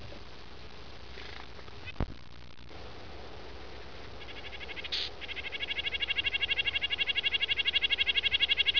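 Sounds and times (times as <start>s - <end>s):
Red-breasted Nuthatch calling: 4.0s - 8.7s.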